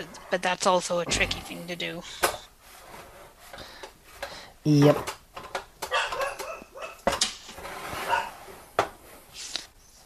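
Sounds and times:
speech: 0.0 - 2.4, 4.6 - 5.2
dog barking and yipping: 5.9 - 7.1, 8.0 - 8.4.

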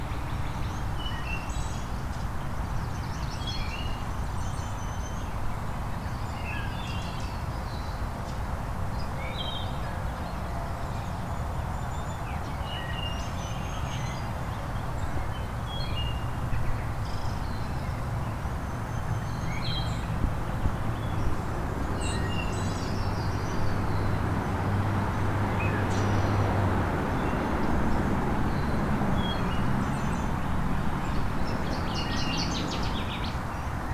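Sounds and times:
northern waterthrush singing in sunshine: 0.0 - 8.3, 8.9 - 33.9
busy chorus of other birds: 0.0 - 33.9.

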